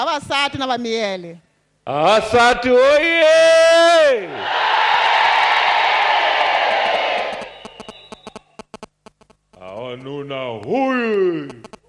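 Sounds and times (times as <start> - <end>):
speech: 0.0 - 4.7, 9.8 - 11.6
group of men shouting together: 4.2 - 7.4
scattered sharp claps: 6.6 - 8.4.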